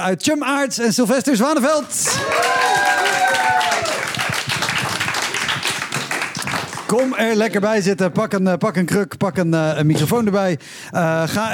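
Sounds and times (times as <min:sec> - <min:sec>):
speech: 0:00.0 - 0:04.0, 0:06.9 - 0:11.5
audience of about 500-600 people applauding: 0:01.9 - 0:07.5.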